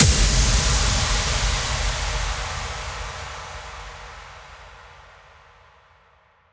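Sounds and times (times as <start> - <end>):
impact: 0.0 - 3.1.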